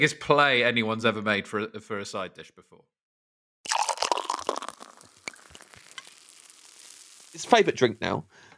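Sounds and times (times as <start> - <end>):
speech: 0.0 - 3.0, 7.4 - 8.5
person chewing crunchy potatoes: 3.7 - 7.3.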